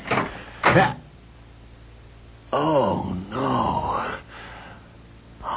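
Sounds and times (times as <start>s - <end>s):
door being opened with rough scraping rattles: 0.0s - 0.8s
speech: 0.7s - 1.0s, 2.5s - 3.8s.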